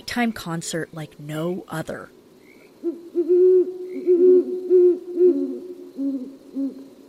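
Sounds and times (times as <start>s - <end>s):
speech: 0.2s - 2.2s, 2.8s - 6.8s
female and male horned owl pair hooting in a courtship duet in a neighborhood at night: 2.8s - 6.9s.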